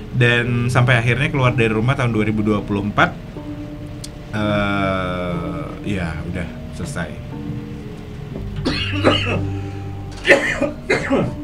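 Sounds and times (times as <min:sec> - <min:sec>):
speech: 0:00.2 - 0:03.3, 0:04.3 - 0:07.3, 0:08.6 - 0:09.6, 0:10.2 - 0:11.4
person coughing in harsh bursts: 0:08.6 - 0:09.5, 0:10.2 - 0:11.4.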